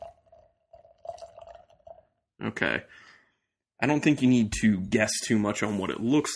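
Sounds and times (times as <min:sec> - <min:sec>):
imperial stout beer poured into a glass: 0:00.0 - 0:02.2
speech: 0:02.4 - 0:03.0, 0:03.8 - 0:06.3.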